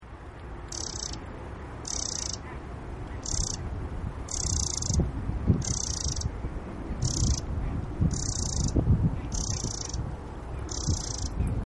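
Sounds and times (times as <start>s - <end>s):
Troglodytes troglodytes singing: 0.7s - 2.4s, 3.2s - 3.7s, 4.3s - 10.0s, 10.6s - 11.6s.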